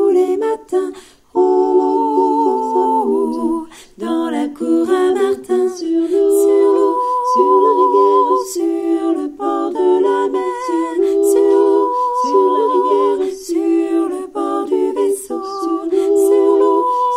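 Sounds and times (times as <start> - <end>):
3 voices: 0.2 - 17.1.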